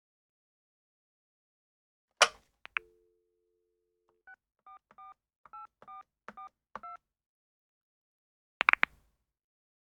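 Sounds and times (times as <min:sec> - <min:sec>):
telephone handset clicking and clattering: 0:02.2 - 0:02.9
short two-tone telephone keypad beeps: 0:04.7 - 0:07.0.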